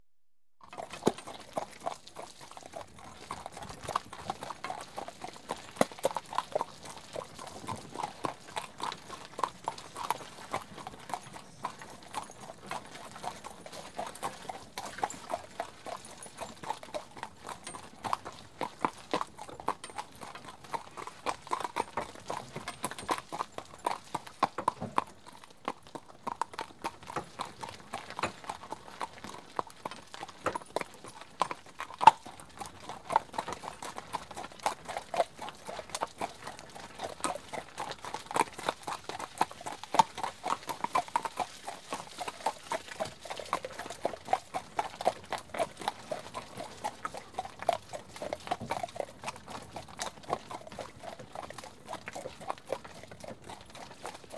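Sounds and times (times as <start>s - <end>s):
horse walking along pulling a load: 0.6s - 54.3s.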